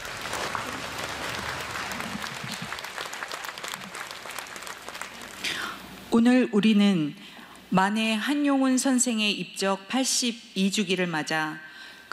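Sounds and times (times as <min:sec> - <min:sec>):
audience applause at a memorial ceremony: 0:00.0 - 0:05.6
speech: 0:06.1 - 0:12.1.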